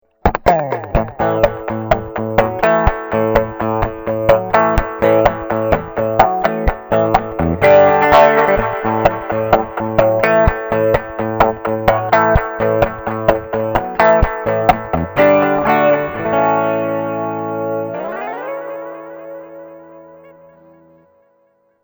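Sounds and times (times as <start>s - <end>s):
vintage delay effect: 0.2s - 21.2s.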